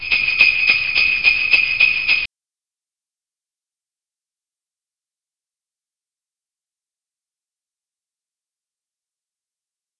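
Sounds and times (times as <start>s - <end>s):
christmas song: 0.0s - 2.3s.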